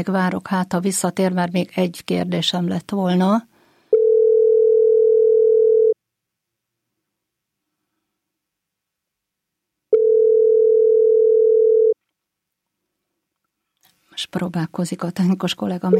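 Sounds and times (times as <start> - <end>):
speech: 0.0 - 3.5, 14.2 - 15.9
telephone line tone after a dropped call: 4.0 - 6.0, 10.0 - 12.0.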